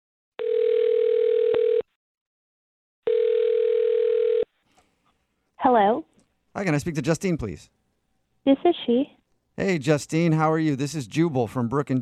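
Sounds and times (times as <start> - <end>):
long steady telephone ringback tones: 0.4 - 1.8, 3.1 - 4.5
speech: 5.7 - 7.8, 8.5 - 12.0.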